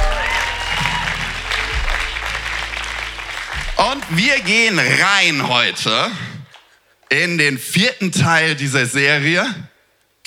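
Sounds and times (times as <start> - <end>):
audience applause for the band: 0.0 - 5.8
low hum: 0.0 - 5.8
speech: 3.9 - 6.3, 7.1 - 10.2.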